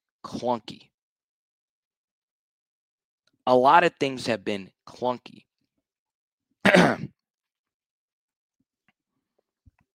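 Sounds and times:
speech: 0.3 - 0.9, 3.5 - 5.5
throat clearing: 6.6 - 7.2.

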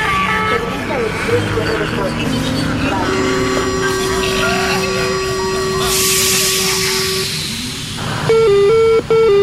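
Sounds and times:
voices on a metro train: 0.0 - 8.2
metro train rumbling: 0.0 - 9.1
metro train door electronic warning tone: 1.3 - 9.4
metro train doors hissing air: 2.2 - 8.3.

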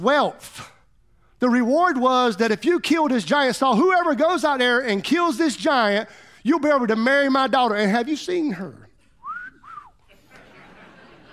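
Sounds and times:
speech: 0.0 - 0.7, 1.4 - 8.8
person attempting a wolf whistle: 9.2 - 10.0
laughter: 10.1 - 11.3.

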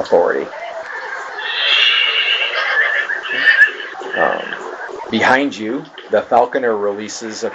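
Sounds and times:
speech: 0.0 - 0.6, 5.1 - 7.5
several horses neighing and whinnying: 0.6 - 5.3.

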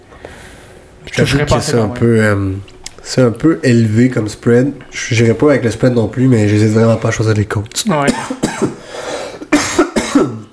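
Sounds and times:
speech: 1.2 - 8.7
seasonal harsh throaty coughs: 8.1 - 10.5.

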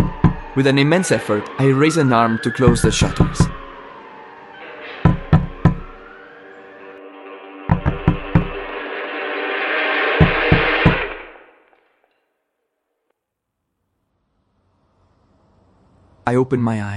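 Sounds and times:
sharp knocking on a car window: 0.0 - 0.6, 2.7 - 3.6, 5.1 - 6.0, 7.7 - 8.6, 10.2 - 11.0
rising siren-like wail: 0.0 - 11.7
speech: 0.6 - 3.6, 16.4 - 16.9.

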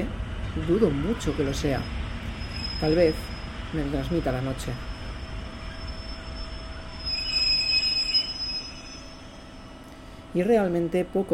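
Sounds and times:
passenger train rumbling at night heard from inside a compartment: 0.0 - 11.3
passenger train wheels squealing: 0.5 - 9.8
speech: 0.6 - 2.0, 2.8 - 4.9, 10.3 - 11.3.

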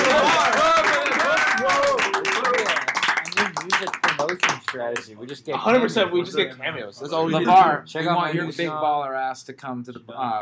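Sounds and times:
excited voices calling out and cheering: 0.0 - 2.9
small group of people clapping: 0.0 - 5.4
speech: 4.8 - 10.4.

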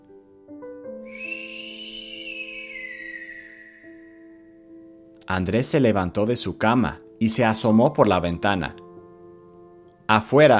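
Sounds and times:
long high whistle gliding downward: 1.1 - 4.6
speech: 5.3 - 8.8, 10.1 - 10.5.

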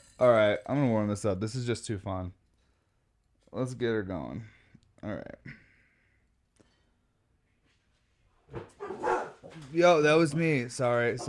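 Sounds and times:
speech: 0.2 - 2.4, 3.5 - 5.6, 8.5 - 11.2
dogs barking: 8.5 - 9.6.

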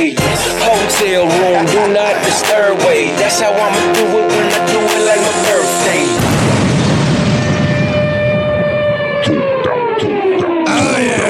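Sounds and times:
speech: 0.0 - 6.0
loud rap track with heavy booming bass: 0.0 - 6.2, 9.1 - 11.2
sharp drum hits: 6.2 - 8.9
long siren-like synth tone sliding downward: 6.9 - 11.2.

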